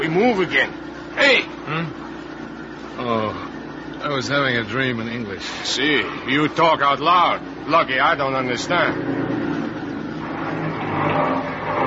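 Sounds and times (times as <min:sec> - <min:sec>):
speech: 0:00.1 - 0:02.1, 0:03.0 - 0:09.2
car engine revving hard: 0:08.6 - 0:11.8
car wheels spinning in mud: 0:09.6 - 0:11.8.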